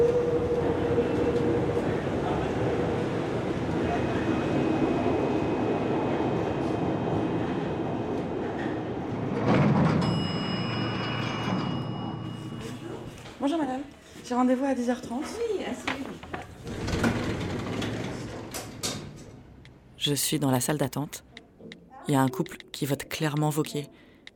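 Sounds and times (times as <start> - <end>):
metro train rolling along heard from inside: 0.0 - 13.1, 16.4 - 20.0
speech: 13.5 - 15.6, 20.0 - 21.3, 22.1 - 24.0.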